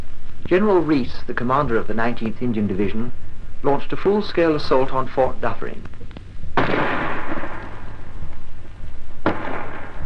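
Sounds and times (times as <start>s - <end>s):
speech: 0.5s - 6.1s
5.5 artillery gun firing at point-blank range: 6.6s - 8.0s, 9.2s - 10.0s.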